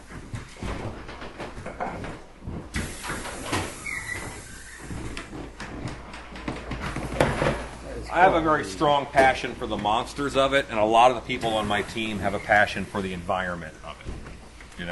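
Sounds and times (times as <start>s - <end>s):
wood creaking and groaning: 0.0s - 14.9s
steady airy hiss: 2.7s - 5.3s
speech: 8.2s - 13.8s.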